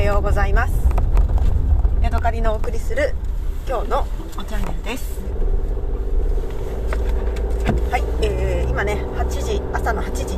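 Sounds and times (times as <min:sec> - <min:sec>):
car engine drone and road noise in the cabin: 0:00.0 - 0:10.3
speech: 0:00.2 - 0:01.0, 0:02.2 - 0:05.6, 0:07.9 - 0:10.3.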